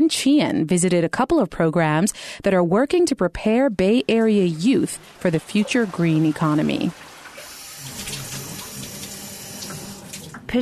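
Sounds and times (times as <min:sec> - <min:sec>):
speech: 0:00.1 - 0:07.1
water pouring from a faucet into a sink: 0:04.3 - 0:10.6.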